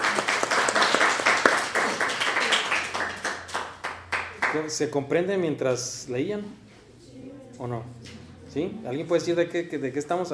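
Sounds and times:
class applauding a student during a lesson: 0:00.0 - 0:04.7
speech: 0:04.5 - 0:06.6, 0:07.6 - 0:10.3.

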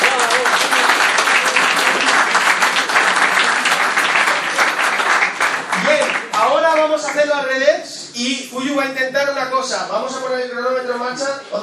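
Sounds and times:
audience applause after a timed challenge: 0:00.0 - 0:07.3
speech: 0:07.0 - 0:11.6.

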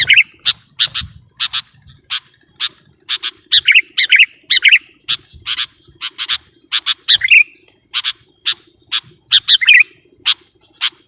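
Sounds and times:
low steady hum: 0:00.0 - 0:11.0
sooty-headed bulbul giving harsh buzzy chirps: 0:00.0 - 0:11.0.

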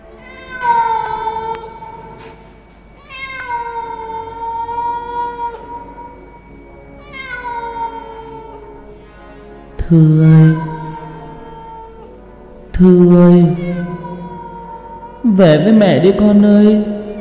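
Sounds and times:
black cat meowing: 0:00.0 - 0:08.8, 0:10.1 - 0:12.2, 0:13.0 - 0:15.4
speech: 0:09.9 - 0:10.6, 0:12.8 - 0:13.9, 0:15.4 - 0:16.9.

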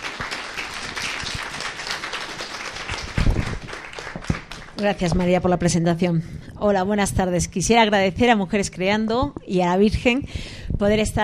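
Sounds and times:
crowd applauding at a feminist self-defence debate: 0:00.0 - 0:05.3
speech: 0:04.8 - 0:11.2.

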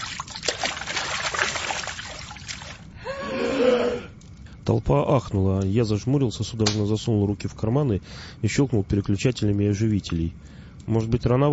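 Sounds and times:
body shoved into a boiling cauldron splashing: 0:00.0 - 0:02.9
speech: 0:04.7 - 0:11.5.

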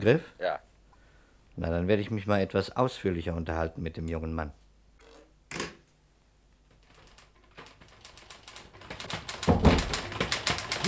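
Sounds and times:
speech: 0:00.0 - 0:00.6, 0:01.6 - 0:04.6
typewriter keys clacking: 0:06.7 - 0:10.8.

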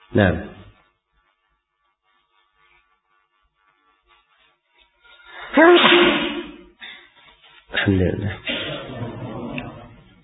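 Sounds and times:
speech: 0:00.1 - 0:00.6, 0:05.6 - 0:06.2, 0:07.8 - 0:08.5
sneeze during a religious study session: 0:05.6 - 0:06.7, 0:08.4 - 0:09.1.

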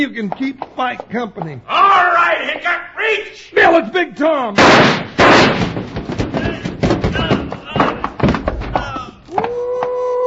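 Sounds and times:
speech: 0:00.0 - 0:07.3
man tumbling down a staircase after being knocked off the top step: 0:04.6 - 0:10.0
people talking and shouting: 0:06.0 - 0:10.2.

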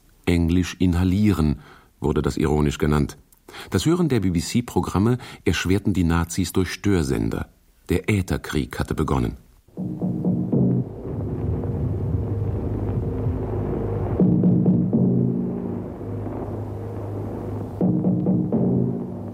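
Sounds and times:
speech: 0:00.5 - 0:10.1
low throbbing drum signal tapping Morse code letter V: 0:09.7 - 0:19.3.

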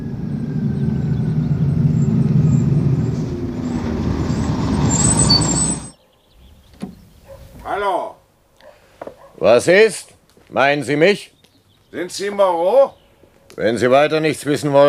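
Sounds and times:
bus engine droning at a terminal stop: 0:00.0 - 0:06.0
bus air brakes hissing: 0:02.5 - 0:06.0
speech: 0:09.4 - 0:11.3, 0:11.9 - 0:13.0, 0:13.6 - 0:14.8.

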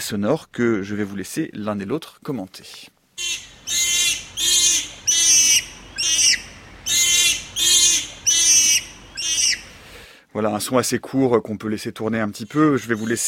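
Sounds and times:
speech: 0:00.0 - 0:03.5, 0:10.4 - 0:13.2
young bonobo distress cries: 0:03.2 - 0:09.8.

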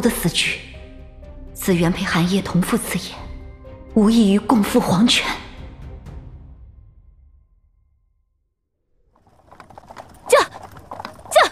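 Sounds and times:
speech: 0:00.0 - 0:00.6, 0:01.6 - 0:03.2, 0:04.0 - 0:05.4
horse hooves clip-clopping of a horse-drawn carriage on a street: 0:09.2 - 0:11.5
horse-drawn carriage rumbling: 0:09.2 - 0:11.5.

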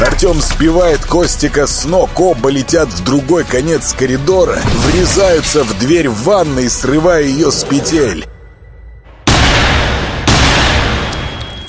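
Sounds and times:
speech: 0:00.2 - 0:08.3
gunshots: 0:09.2 - 0:11.4.

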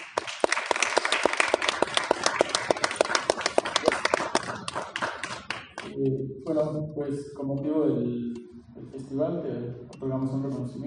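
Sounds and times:
audience applause at a festival event: 0:00.0 - 0:05.9
speech: 0:06.0 - 0:10.8.

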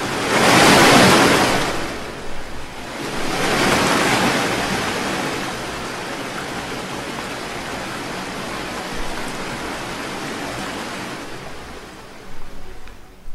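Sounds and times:
violent ocean waves crashing around a small boat: 0:00.0 - 0:13.3.

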